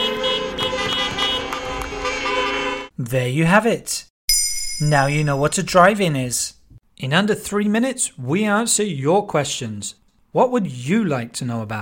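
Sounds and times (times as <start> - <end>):
several car horns honking: 0.0 - 2.9
speech: 3.1 - 4.1, 4.8 - 11.7.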